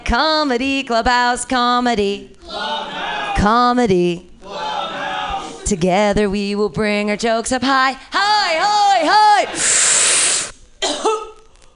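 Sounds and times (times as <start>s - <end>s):
speech: 0.1s - 4.3s, 5.7s - 9.8s
harsh breathy burst: 9.5s - 10.6s
short loud throaty cough: 10.8s - 11.4s.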